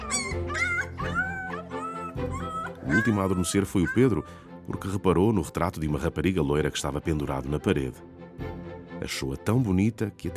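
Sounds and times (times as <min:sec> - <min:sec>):
several dogs whimpering and yipping: 0:00.0 - 0:04.4
speech: 0:02.9 - 0:08.2, 0:09.0 - 0:10.3.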